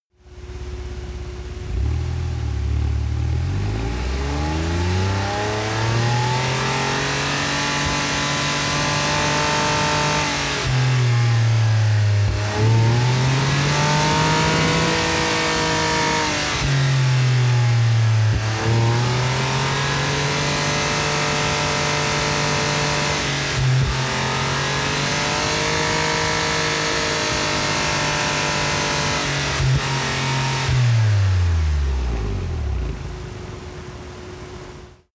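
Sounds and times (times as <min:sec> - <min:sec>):
sports car engine at unstable very high rpm: 0:00.3 - 0:35.0.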